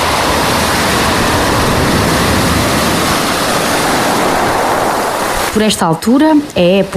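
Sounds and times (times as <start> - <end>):
sea waves breaking on the shore: 0.0 - 6.9
speech: 5.6 - 6.9.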